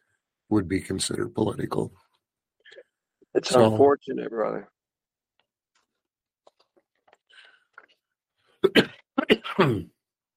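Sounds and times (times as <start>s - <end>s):
speech: 0.5s - 2.0s, 3.4s - 4.8s, 8.6s - 9.9s
person clearing throat: 8.6s - 10.0s
person coughing: 8.6s - 10.0s.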